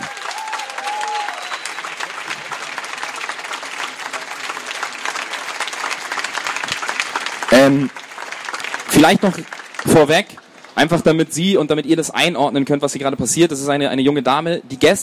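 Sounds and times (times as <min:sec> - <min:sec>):
sharp cheer: 0:00.0 - 0:10.9
large audience clapping at a slam stage event: 0:00.0 - 0:12.1
speech: 0:07.5 - 0:08.0, 0:08.9 - 0:15.0.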